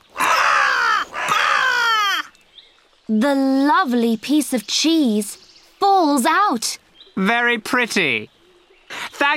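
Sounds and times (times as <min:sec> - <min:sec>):
crow cawing: 0:00.1 - 0:02.4
speech: 0:03.1 - 0:05.4, 0:06.0 - 0:08.3.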